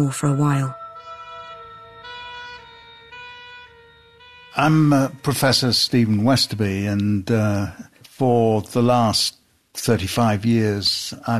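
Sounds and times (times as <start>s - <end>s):
speech: 0.0s - 0.8s, 4.6s - 11.3s
two-tone ambulance siren wailing: 0.0s - 6.8s.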